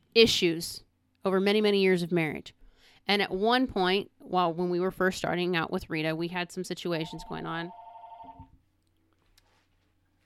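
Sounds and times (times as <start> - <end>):
speech: 0.2 - 7.8
electronic telephone ring in a home studio: 7.0 - 8.5.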